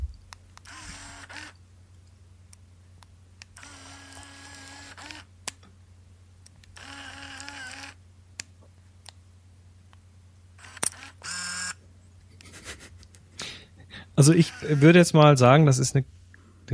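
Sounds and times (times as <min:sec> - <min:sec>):
compact film camera clicks firing a flash shot: 0:00.6 - 0:01.6, 0:03.5 - 0:05.3, 0:06.7 - 0:08.0, 0:10.6 - 0:11.8
compact film camera motor whirring as lens extends and film advances: 0:00.6 - 0:01.6, 0:03.4 - 0:05.3, 0:06.7 - 0:08.0, 0:10.6 - 0:11.8, 0:14.2 - 0:15.0
speech: 0:14.2 - 0:16.7.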